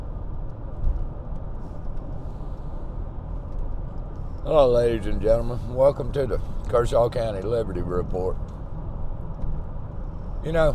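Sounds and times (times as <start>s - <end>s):
road traffic passing on a highway: 0.0s - 10.7s
speech: 4.4s - 8.6s, 10.4s - 10.7s.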